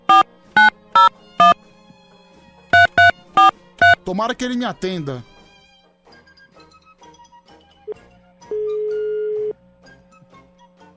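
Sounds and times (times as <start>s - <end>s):
telephone ringback tone through the call line: 0.1s - 1.6s, 2.8s - 4.0s, 8.5s - 9.5s
speech: 4.1s - 5.3s.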